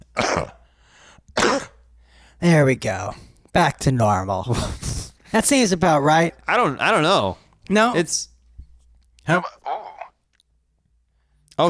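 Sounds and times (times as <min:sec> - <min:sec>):
person clearing throat forcefully: 0:00.0 - 0:00.7, 0:01.4 - 0:01.8
faint hum: 0:00.0 - 0:11.6
speech: 0:02.4 - 0:08.3, 0:09.3 - 0:09.6.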